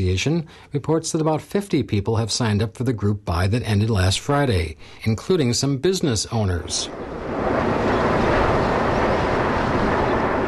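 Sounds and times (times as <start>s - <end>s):
speech: 0.0s - 7.4s
low-flying airplane roaring overhead: 6.8s - 10.4s.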